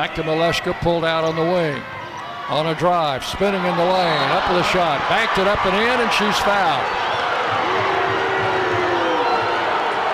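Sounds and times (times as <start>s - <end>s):
speech: 0.0s - 7.2s
large indoor arena crowd roaring in disapproval: 3.7s - 10.1s.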